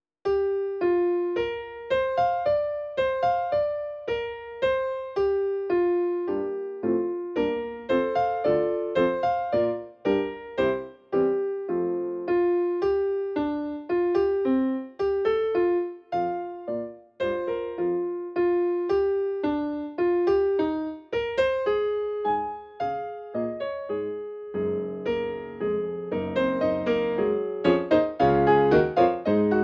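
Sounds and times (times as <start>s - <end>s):
Steinway D grand piano: 0.2s - 29.6s.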